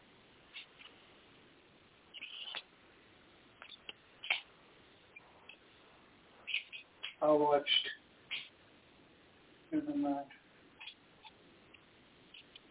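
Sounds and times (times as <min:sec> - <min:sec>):
steady hiss: 0:00.0 - 0:12.6
faint coyotes yipping and howling: 0:02.1 - 0:02.7, 0:03.6 - 0:04.5, 0:06.4 - 0:07.2, 0:07.8 - 0:08.6, 0:10.8 - 0:11.4, 0:12.3 - 0:12.6
speech: 0:07.2 - 0:07.9, 0:09.7 - 0:10.4.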